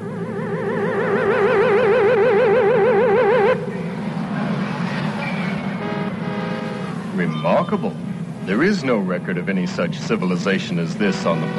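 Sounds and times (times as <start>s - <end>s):
warbling wavering electronic tone: 0.0s - 3.6s
approaching car engine rumble: 0.0s - 11.5s
road noise: 0.0s - 11.5s
speech: 7.7s - 11.5s.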